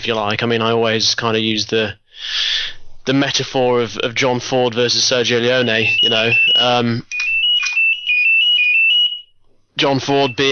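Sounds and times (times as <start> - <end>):
speech: 0.0 - 2.5, 3.1 - 7.2, 9.8 - 10.5
mobile phone ringtone with high-pitched electronic melody: 5.6 - 9.3.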